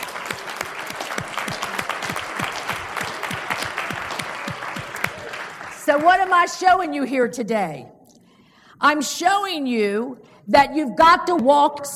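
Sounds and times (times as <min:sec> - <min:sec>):
room full of people applauding: 0:00.0 - 0:06.3
speech: 0:05.9 - 0:08.0, 0:08.8 - 0:11.9.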